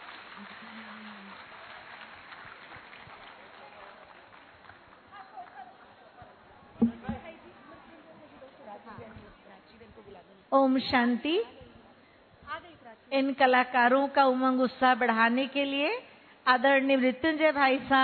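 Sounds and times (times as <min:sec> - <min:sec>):
audience applause: 0:00.0 - 0:06.0
speech: 0:06.8 - 0:07.2, 0:10.2 - 0:11.6, 0:13.1 - 0:18.0.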